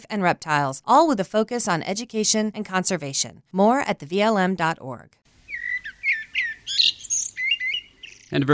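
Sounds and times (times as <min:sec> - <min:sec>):
speech: 0:00.0 - 0:05.2, 0:08.3 - 0:08.5
great crested flycatcher calling with rising whistled notes: 0:05.5 - 0:08.4.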